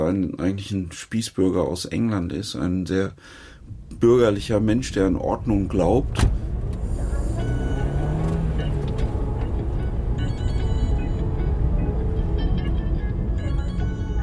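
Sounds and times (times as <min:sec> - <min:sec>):
speech: 0:00.0 - 0:06.4
Dacia Logan taxi engine and road rumble inside moving car: 0:03.6 - 0:14.2
high whines inside a moving taxi: 0:06.4 - 0:14.2.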